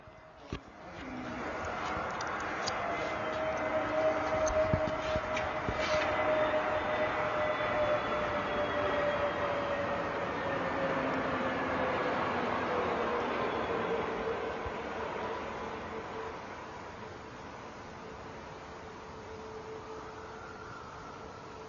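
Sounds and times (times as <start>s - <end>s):
airplane roar passing overhead: 0.0s - 16.8s
faint sustained whine: 0.0s - 21.6s.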